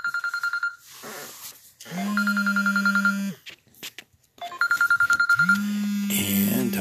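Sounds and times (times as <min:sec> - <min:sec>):
telephone ringing with an incoming call: 0:00.0 - 0:00.9, 0:01.9 - 0:03.4, 0:04.4 - 0:06.7.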